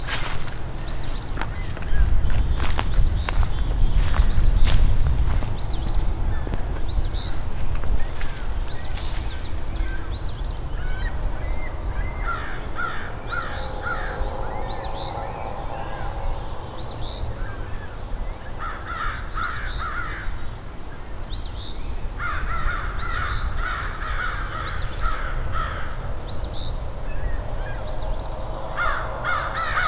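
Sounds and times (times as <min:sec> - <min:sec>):
several crows cawing harshly: 0:00.0 - 0:10.1, 0:12.0 - 0:20.5, 0:22.2 - 0:26.2, 0:28.5 - 0:29.8
steady low rumble of outdoor noise: 0:00.0 - 0:18.6, 0:25.3 - 0:29.8.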